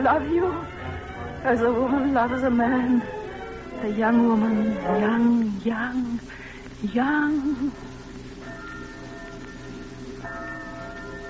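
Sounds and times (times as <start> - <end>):
speech: 0.0 - 3.2, 3.8 - 7.9
church bells ringing at night: 0.0 - 5.2, 7.8 - 11.2
steady low rumble: 0.0 - 6.3.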